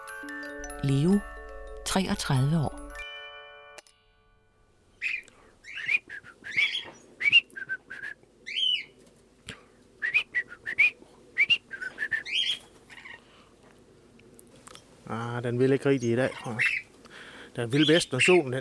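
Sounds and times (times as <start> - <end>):
speech: 0.2 - 2.8, 15.5 - 16.8, 17.6 - 18.5
pet bird whistling: 5.0 - 8.9, 10.0 - 12.6.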